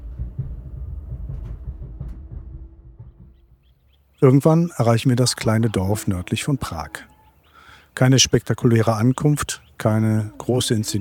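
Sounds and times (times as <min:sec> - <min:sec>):
train rolling along the rails between Germany and the Czech Republic: 0:00.0 - 0:03.8
speech: 0:04.2 - 0:07.1, 0:08.0 - 0:10.9.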